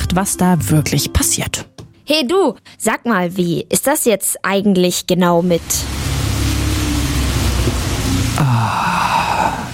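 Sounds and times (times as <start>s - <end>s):
speech: 0.1s - 6.0s
steady rain hissing: 5.4s - 9.7s.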